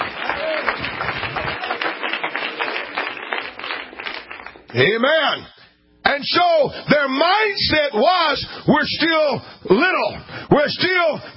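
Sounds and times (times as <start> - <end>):
crowd applauding: 0.0 - 4.8
speech: 4.7 - 11.3.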